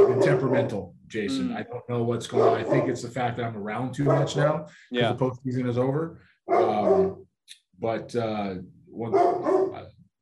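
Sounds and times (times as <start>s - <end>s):
dog barking and growling: 0.0s - 1.5s, 2.3s - 3.2s, 4.0s - 4.6s, 6.5s - 7.2s, 9.0s - 9.9s
speech: 0.3s - 9.7s.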